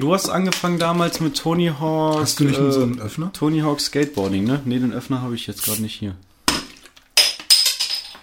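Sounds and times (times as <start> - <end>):
speech: 0.0 - 6.3
glass bottles clinking together in a toast: 7.2 - 8.2.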